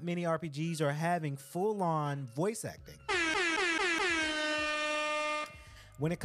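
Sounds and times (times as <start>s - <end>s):
speech: 0.0s - 3.2s, 6.0s - 6.2s
loud air horn blast: 3.1s - 5.6s.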